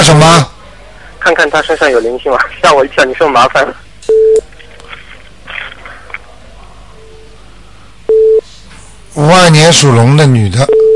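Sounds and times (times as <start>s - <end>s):
speech: 0.0s - 0.5s, 1.2s - 3.8s, 9.2s - 10.8s
loud steady electronic telephone beeps on a transferred call: 4.1s - 4.4s, 8.1s - 8.4s, 10.7s - 10.9s.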